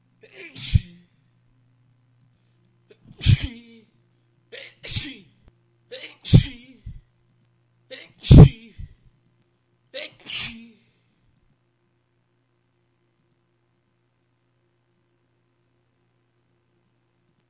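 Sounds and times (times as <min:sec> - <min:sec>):
man sneezing: 0:00.2 - 0:01.0, 0:03.0 - 0:03.8, 0:04.6 - 0:05.3, 0:05.9 - 0:07.0, 0:07.9 - 0:09.0, 0:10.0 - 0:10.8.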